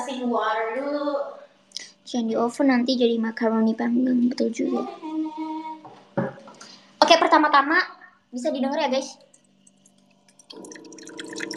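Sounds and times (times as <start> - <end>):
speech: 0.1 - 1.4, 2.1 - 5.4, 7.1 - 9.3
water dispenser pouring and dripping water: 9.7 - 11.5.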